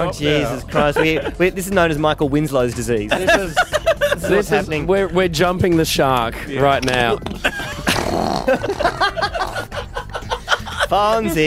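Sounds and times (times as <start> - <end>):
speech: 0.0 - 9.4, 10.9 - 11.4
people chuckling and snickering: 0.6 - 1.5, 3.1 - 4.5, 7.1 - 11.4
fart sound effect: 7.8 - 8.7.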